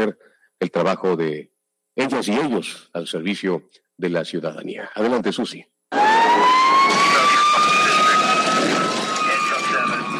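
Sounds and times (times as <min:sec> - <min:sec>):
speech: 0:00.0 - 0:06.2
fire engine siren wailing: 0:05.9 - 0:10.1
street noise: 0:05.9 - 0:10.1.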